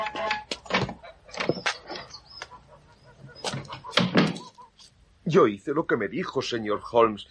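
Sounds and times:
grey-headed goose being killed squawking and honking: 0.0s - 4.9s
speech: 5.3s - 7.2s.

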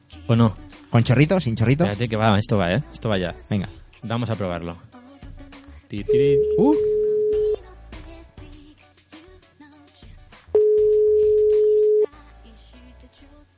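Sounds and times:
speech: 0.3s - 5.0s, 5.9s - 7.0s
ringing tone of an outgoing telephone call: 6.1s - 7.6s, 10.6s - 12.1s.

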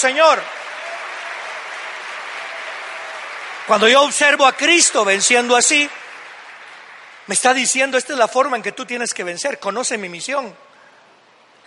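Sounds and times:
speech: 0.0s - 0.6s, 3.7s - 6.0s, 7.3s - 10.7s
audience applauding: 0.0s - 8.6s.

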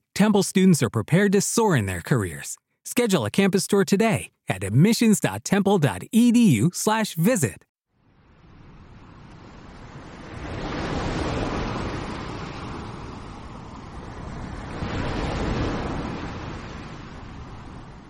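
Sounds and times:
speech: 0.2s - 7.7s
ocean waves at sea: 8.0s - 18.0s.

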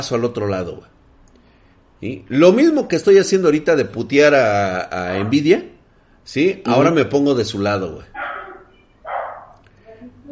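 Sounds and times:
speech: 0.0s - 1.0s, 2.0s - 5.7s, 6.3s - 8.3s
small dog yapping: 8.2s - 9.6s.

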